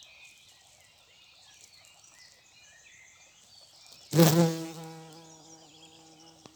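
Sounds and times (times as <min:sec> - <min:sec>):
bumblebee buzzing in flight: 0:04.1 - 0:06.5.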